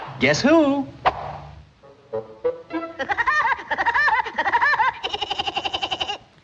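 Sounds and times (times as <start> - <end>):
speech: 0.2 - 1.0
cartoon woodpecker character's high staccato cackling laugh: 2.7 - 6.3.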